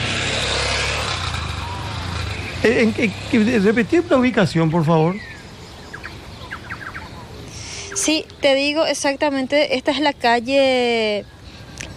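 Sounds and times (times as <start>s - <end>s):
car roaring past on the street: 0.0s - 8.0s
road noise: 0.0s - 11.9s
speech: 2.6s - 5.3s, 8.1s - 11.3s.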